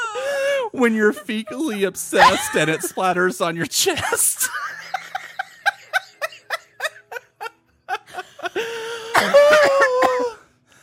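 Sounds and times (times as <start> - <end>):
laughter: 0.4 - 10.4
speech: 0.7 - 4.8, 9.2 - 9.8
short sharp coughs and strained voiced hacking: 9.1 - 10.4.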